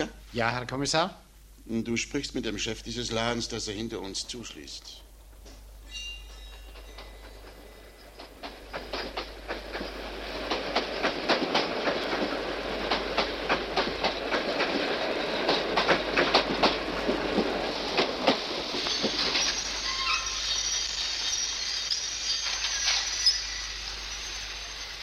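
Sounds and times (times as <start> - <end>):
speech: 0.0 - 5.1
train wheels clickety-clack over track joints: 6.2 - 23.4.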